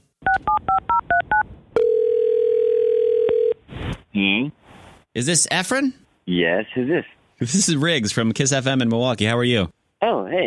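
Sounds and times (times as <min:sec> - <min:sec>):
faint noise: 0:00.0 - 0:10.4
steady telephone tone: 0:00.3 - 0:03.6
speech: 0:04.2 - 0:04.6, 0:05.2 - 0:10.4.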